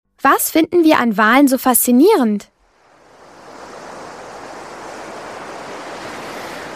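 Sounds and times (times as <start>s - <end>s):
speech: 0.2s - 2.5s
wind blowing across a North Sea beach: 2.0s - 6.7s
surf breaking on a North Sea beach: 2.6s - 6.7s.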